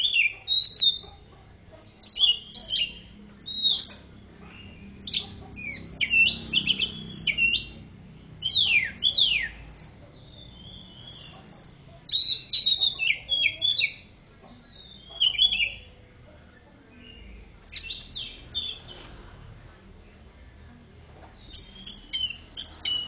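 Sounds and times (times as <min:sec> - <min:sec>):
Oriental magpie-robin singing a long series of varied whistles: 0:00.0 - 0:01.2, 0:01.9 - 0:07.8, 0:08.4 - 0:15.9, 0:17.0 - 0:19.0, 0:21.4 - 0:23.0
soft low-pitched background noise: 0:00.0 - 0:23.0.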